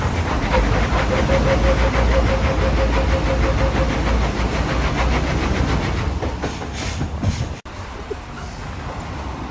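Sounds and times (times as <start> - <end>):
heavy lorry engine straining to climb a hill on a wet road: 0.0 - 6.8.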